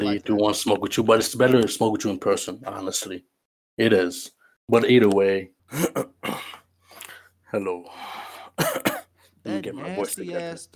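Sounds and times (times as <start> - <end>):
speech: 0.0 - 6.6, 7.5 - 10.7
harsh throat clearing: 5.7 - 6.7.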